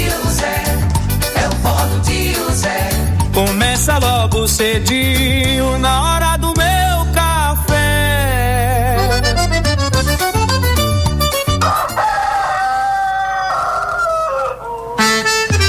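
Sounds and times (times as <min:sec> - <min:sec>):
lively loud music with accordion-like tones and bouncing rhythm: 0:00.0 - 0:07.0, 0:07.8 - 0:12.0, 0:15.0 - 0:15.6
speech: 0:04.4 - 0:06.7
rooster crowing: 0:11.6 - 0:15.1.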